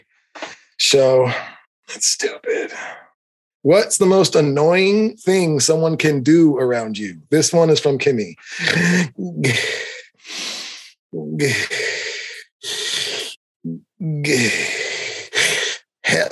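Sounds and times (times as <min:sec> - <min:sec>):
speech: 0:00.8 - 0:10.5, 0:11.1 - 0:11.9, 0:14.0 - 0:14.8
voice mimicking exaggerated heavy breathing: 0:08.4 - 0:13.4, 0:14.3 - 0:15.9.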